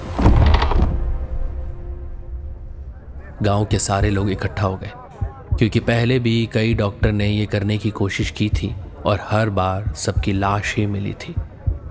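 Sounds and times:
operating theatre door being shut from inside: 0.0s - 1.6s
speech: 3.4s - 5.0s, 5.6s - 11.5s.

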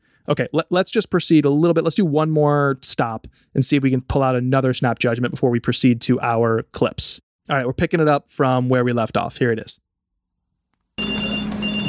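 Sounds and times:
speech: 0.2s - 9.8s
phone ringing with a steady electronic tone: 11.0s - 11.8s.

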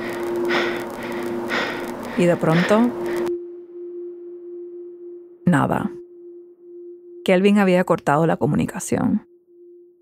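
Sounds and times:
heavy breathing over a radio line: 0.0s - 3.3s
thin hissy radio line: 0.0s - 3.3s
steady electrical hum: 0.0s - 10.0s
speech: 2.2s - 3.1s, 5.5s - 6.0s, 7.2s - 9.3s.

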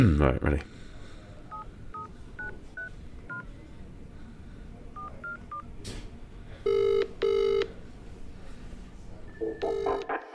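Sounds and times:
speech: 0.2s - 0.9s
telephone ring tone: 6.7s - 7.7s, 9.4s - 10.1s.

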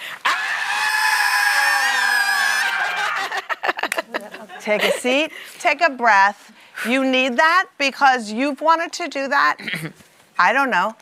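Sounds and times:
large audience screaming in unison: 0.1s - 3.5s
scattered shouts and cheers: 0.2s - 3.3s
laughter: 2.6s - 5.3s
speech: 4.7s - 11.0s.

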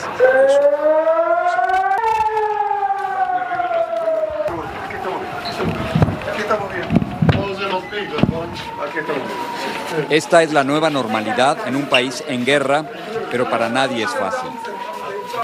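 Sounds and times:
rocket air-raid warning siren at Barzilai Hospital in Ashkelon Israel: 0.0s - 15.4s
wind buffeting the microphone: 1.8s - 10.1s
speech: 10.0s - 14.6s.

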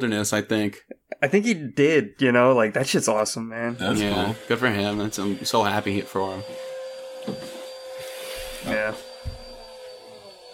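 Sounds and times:
speech: 0.0s - 7.4s
vacuum cleaner running in another room: 3.7s - 10.5s.

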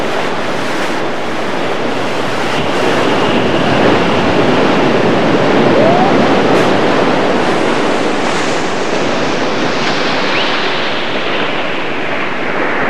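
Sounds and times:
waves washing in: 0.2s - 12.7s
faint thin tone: 5.7s - 6.4s.

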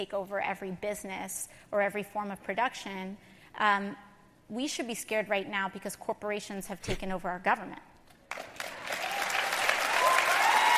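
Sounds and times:
speech: 0.0s - 8.5s
audience applause: 8.3s - 10.7s.

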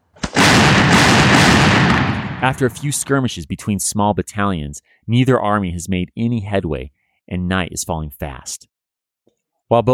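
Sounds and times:
heavy booming cannon fire: 0.2s - 3.1s
speech: 2.4s - 8.7s, 9.7s - 9.9s.

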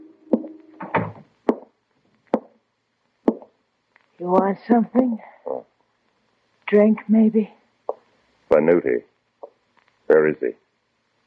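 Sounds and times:
slow hard footsteps on a wooden floor: 0.4s - 1.7s, 2.3s - 2.6s, 3.3s - 3.5s, 4.2s - 5.6s
door creaking open: 0.7s - 1.3s
speech: 4.2s - 5.6s, 6.7s - 7.6s, 8.5s - 9.1s, 10.1s - 10.6s.

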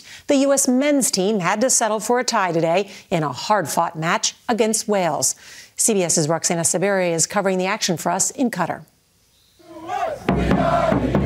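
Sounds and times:
speech: 0.3s - 8.9s, 10.1s - 11.2s
crowd of American soccer fans in Doha cheering and chanting for the U.S. team: 9.6s - 11.2s
sharp rhythmic claps or drum hits: 9.9s - 11.2s.

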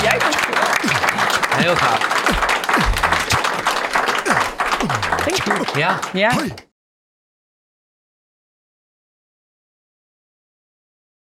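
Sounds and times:
voices whooping and calling out: 0.0s - 6.0s
crowd applauding: 0.0s - 6.6s
laughter: 0.0s - 6.6s
speech: 1.6s - 3.2s, 4.8s - 6.7s.

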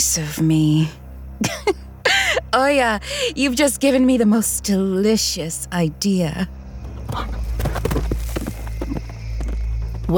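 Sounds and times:
steady low hum: 0.0s - 10.1s
speech: 0.2s - 1.6s, 2.5s - 7.4s
galloping hooves of a buffalo running through the night: 6.9s - 10.1s.

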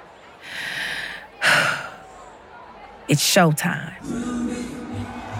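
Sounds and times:
deep breath: 0.4s - 2.1s
speech: 3.1s - 4.4s.

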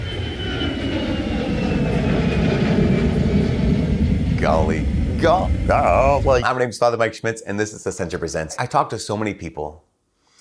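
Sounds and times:
airplane engine roar passing overhead: 0.0s - 6.4s
faint whining tone: 0.0s - 6.4s
speech: 5.2s - 9.9s.

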